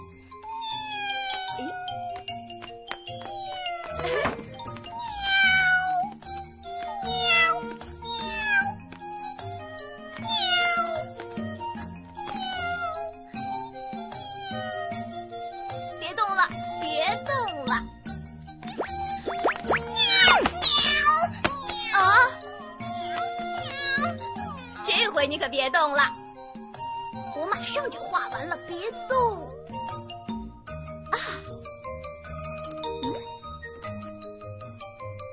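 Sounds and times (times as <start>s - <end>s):
soft sustained musical background: 0.0s - 35.3s
cat meowing: 0.4s - 2.2s, 3.2s - 4.3s, 5.0s - 6.1s, 6.8s - 8.8s, 10.2s - 11.2s, 12.2s - 15.0s, 19.8s - 22.4s, 23.1s - 24.8s
speech: 25.7s - 26.2s.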